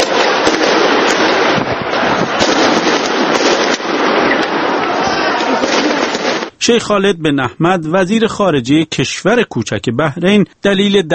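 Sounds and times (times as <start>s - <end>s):
tear gas shots during street clashes between protesters and police: 0.0s - 4.7s, 5.3s - 6.5s
gunfire during street clashes between protesters and police: 0.0s - 6.5s
speech: 6.6s - 11.1s.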